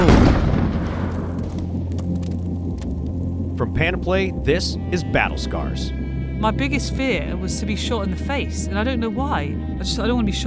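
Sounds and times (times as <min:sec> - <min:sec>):
landmine explosion underfoot in Iraq: 0:00.0 - 0:02.6
speech: 0:03.7 - 0:10.4.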